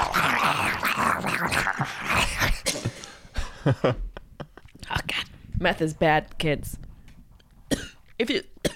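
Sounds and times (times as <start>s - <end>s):
person growling like a dog: 0.0s - 2.8s
speech: 3.6s - 4.1s, 5.6s - 6.8s, 8.2s - 8.5s.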